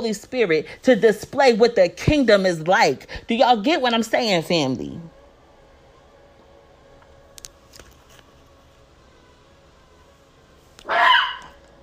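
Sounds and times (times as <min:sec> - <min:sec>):
speech: 0:00.0 - 0:05.1
puppy barking: 0:10.8 - 0:11.6.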